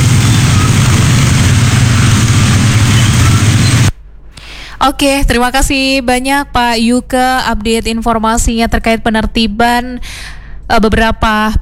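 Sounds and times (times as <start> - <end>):
road traffic engines heading toward Medan in the Bandulan area: 0.0 - 4.0
speech: 4.8 - 11.5.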